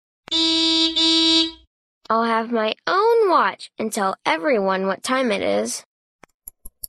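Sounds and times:
car horn honking: 0:00.3 - 0:01.7
speech: 0:02.1 - 0:05.9.

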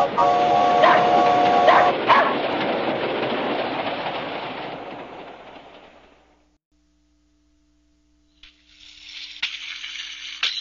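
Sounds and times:
train rumbling along rails: 0:00.0 - 0:06.6.

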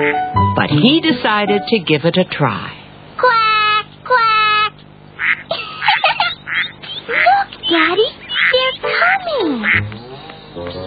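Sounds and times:
speech: 0:00.0 - 0:02.8
child imitating duck quacks: 0:03.2 - 0:05.5, 0:06.5 - 0:09.9.

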